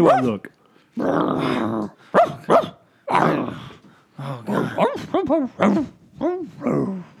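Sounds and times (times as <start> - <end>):
dog barking and yipping: 0.0 - 0.4, 2.1 - 2.8, 4.8 - 5.8
speech: 0.0 - 7.1
dog growling: 1.0 - 7.1.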